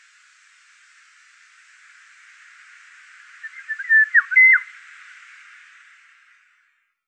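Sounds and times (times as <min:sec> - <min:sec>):
faint hiss: 0:00.0 - 0:07.0
Eurasian golden oriole singing: 0:03.4 - 0:04.7.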